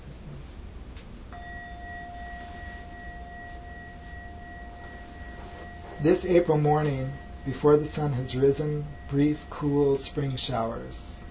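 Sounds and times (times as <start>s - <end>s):
bell strike between sections of a renga poem reading: 1.3s - 11.2s
speech: 6.0s - 11.1s.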